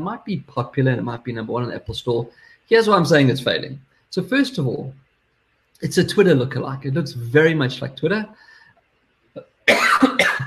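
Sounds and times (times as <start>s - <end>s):
speech: 0.0s - 5.0s, 5.8s - 8.5s
harsh raspy coughing: 9.7s - 10.4s
throat clearing: 9.7s - 10.4s.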